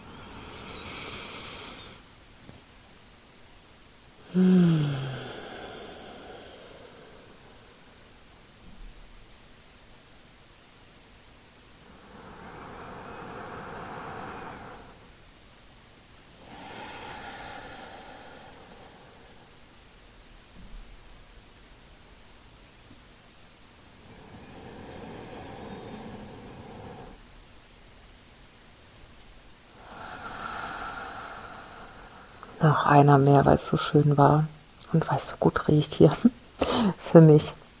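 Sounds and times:
slow deep breathing: 0:00.0 - 0:02.1, 0:04.2 - 0:08.2, 0:11.8 - 0:15.1, 0:16.4 - 0:19.7, 0:24.0 - 0:27.2, 0:29.7 - 0:32.6
speech: 0:04.4 - 0:04.8, 0:32.6 - 0:36.4, 0:37.1 - 0:37.6.

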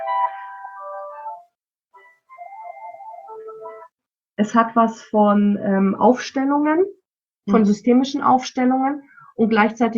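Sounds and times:
phone ringtone for an incoming call, soft electronic melody: 0:00.0 - 0:04.0
speech: 0:04.4 - 0:09.9.

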